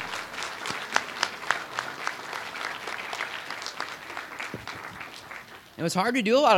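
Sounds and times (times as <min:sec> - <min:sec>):
audience applause: 0:00.0 - 0:06.0
speech: 0:05.8 - 0:06.5.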